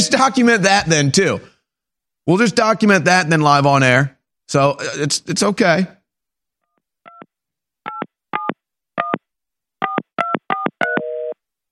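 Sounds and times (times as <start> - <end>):
speech: 0.0 - 1.5, 2.3 - 6.0
touch-tone telephone keypad beeps while dialing: 9.8 - 11.4
steady telephone tone shifting pitch: 10.6 - 11.4.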